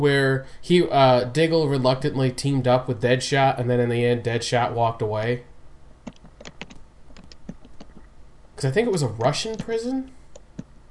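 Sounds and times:
speech: 0.0 - 5.5, 8.6 - 10.2
typing on a computer keyboard: 6.1 - 8.0.

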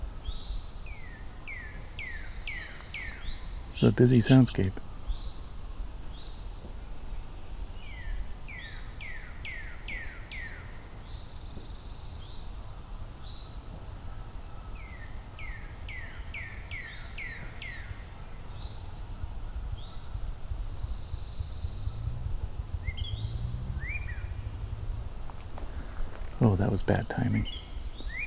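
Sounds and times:
northern cardinal, pine warbler and eastern towhee songs: 0.2 - 28.2
speech: 3.8 - 4.9, 26.8 - 27.6
low rumble: 18.2 - 28.2.

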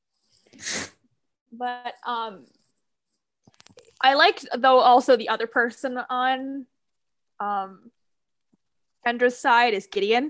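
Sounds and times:
person sneezing: 0.5 - 1.0
speech: 1.5 - 2.6, 4.0 - 6.7, 7.4 - 8.0, 9.0 - 10.2.

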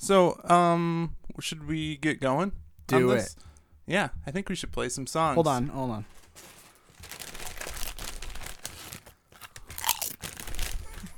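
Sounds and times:
speech: 0.0 - 6.5
person chewing crisp snack: 7.6 - 11.1.

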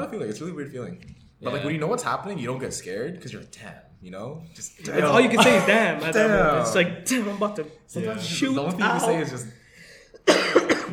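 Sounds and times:
speech: 0.1 - 9.6
loud cough into microphone: 10.2 - 10.9.

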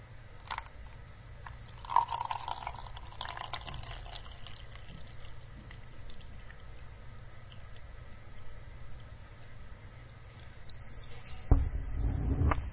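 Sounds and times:
liquid pouring into a cup: 1.4 - 7.9
thin high-pitched electronic beep: 10.7 - 12.7.

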